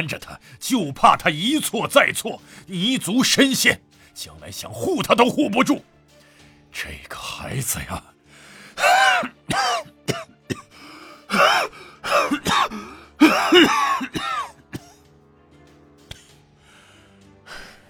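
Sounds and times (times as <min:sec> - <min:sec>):
speech: 0:00.0 - 0:05.9, 0:06.7 - 0:08.1, 0:11.3 - 0:14.2
voice actor imitating wheezing chest and gasping breaths: 0:02.4 - 0:02.7, 0:08.3 - 0:09.3, 0:10.6 - 0:13.9, 0:16.1 - 0:17.8
voice actor imitating a coughing fit: 0:08.8 - 0:10.7, 0:11.3 - 0:15.0, 0:16.1 - 0:16.4.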